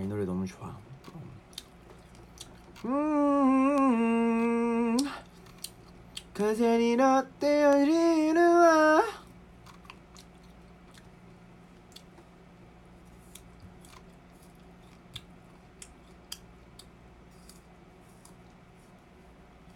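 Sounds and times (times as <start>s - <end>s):
steady low hum: 0.0s - 19.7s
person chewing food with smacking and crunchy clicks: 0.9s - 6.4s, 9.2s - 19.7s
speech: 2.8s - 3.1s, 6.4s - 9.2s.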